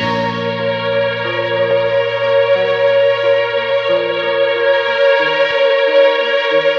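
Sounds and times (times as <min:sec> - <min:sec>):
sad keys piano loop: 0:00.0 - 0:06.6.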